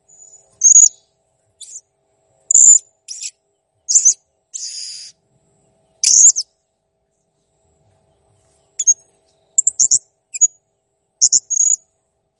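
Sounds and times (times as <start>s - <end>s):
blue-crowned hanging parrot making sharp shrill squeaks: 0.6s - 1.0s, 2.5s - 3.3s, 3.9s - 5.1s, 6.0s - 6.4s, 9.6s - 10.5s, 11.2s - 11.8s.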